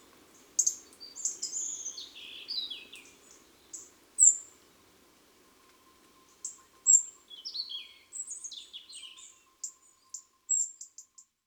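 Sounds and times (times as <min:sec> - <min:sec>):
European robin singing: 0:00.6 - 0:04.4, 0:06.4 - 0:09.8.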